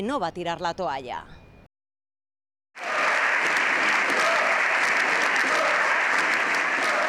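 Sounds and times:
speech: 0.0 - 1.4
large crowd applauding in a parliamentary chamber: 2.8 - 7.0
opposition shouting demands in a parliamentary chamber: 2.8 - 7.0.

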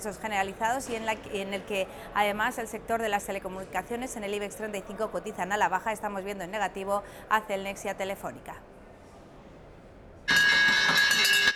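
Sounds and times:
speech: 0.0 - 8.7
trading-floor bell ringing for a telecom group's stock market debut: 10.3 - 11.5.

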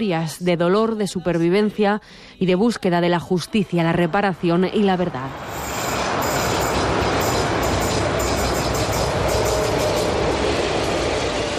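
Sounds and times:
speech: 0.0 - 5.6
commuter train rumbling past: 3.6 - 11.5
faint high wheel squeals: 5.4 - 11.5
commuter train carriages rattling: 5.5 - 11.5.

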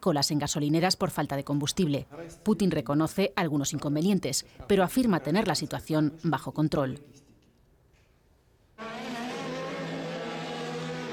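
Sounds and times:
speech: 0.0 - 7.2
IndyCar race cars racing through city streets: 8.8 - 11.1.

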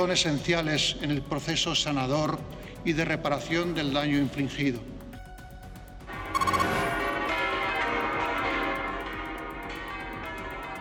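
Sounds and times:
speech: 0.0 - 4.9
church bells of Almudena Cathedral and other Madrid churches pealing: 7.0 - 10.7.

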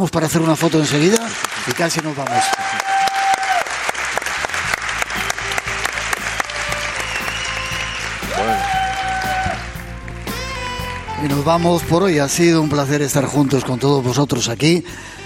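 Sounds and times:
speech: 0.0 - 2.9, 11.2 - 15.2
large indoor audience applause in a theatre: 0.0 - 11.2.

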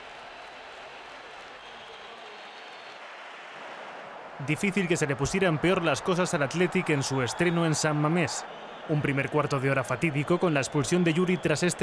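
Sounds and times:
large stadium crowd applauding in a big open space: 0.0 - 11.8
whistling in a stadium crowd: 1.4 - 3.0, 4.5 - 11.8
speech: 4.4 - 11.8.

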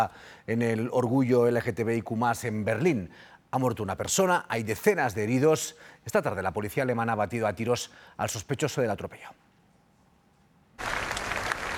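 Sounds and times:
speech: 0.0 - 9.4
applause from thousands of people at a vigil: 10.8 - 11.7.

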